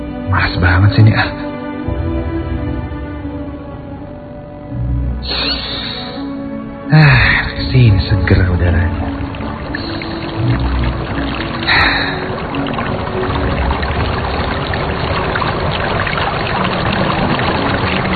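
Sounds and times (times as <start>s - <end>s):
speech: 0.3s - 1.5s, 6.9s - 7.1s, 7.8s - 9.0s
distant flowing river water: 1.4s - 18.1s.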